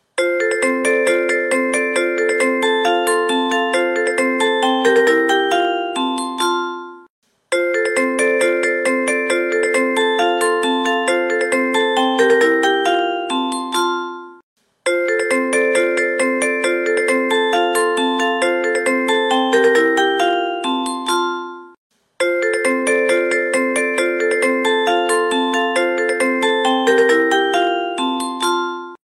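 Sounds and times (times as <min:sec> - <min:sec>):
departure melody: 0:00.2 - 0:29.0.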